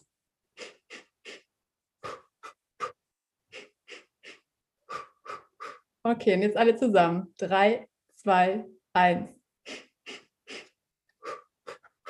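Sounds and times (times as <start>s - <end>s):
exhale through the mouth in a pelvic floor breathing exercise: 0.6s - 5.9s, 9.6s - 12.0s
quick sharp nasal inhales in a pelvic floor breathing exercise: 0.6s - 5.9s, 9.6s - 12.0s
speech: 6.1s - 9.4s.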